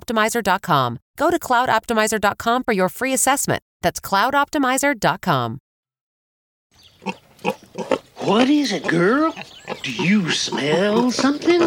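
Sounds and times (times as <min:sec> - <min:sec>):
speech: 0:00.1 - 0:05.6, 0:07.0 - 0:11.6
trained hogs oinking: 0:06.9 - 0:11.6.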